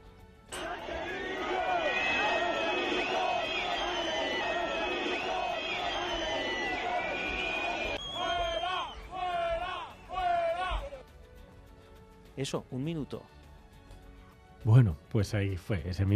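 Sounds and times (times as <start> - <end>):
large crowd at a parade booing the president: 0.6 - 11.0
speech: 12.4 - 13.4, 14.6 - 16.1.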